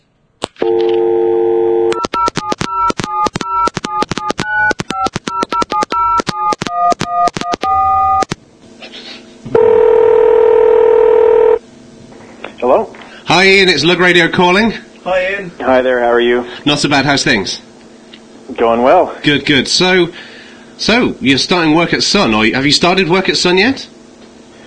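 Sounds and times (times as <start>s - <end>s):
telephone dial tone: 0.6s - 8.3s, 9.6s - 11.6s
touch-tone phone dialling beeps: 0.7s - 8.3s
speech: 13.5s - 17.7s, 18.6s - 23.9s.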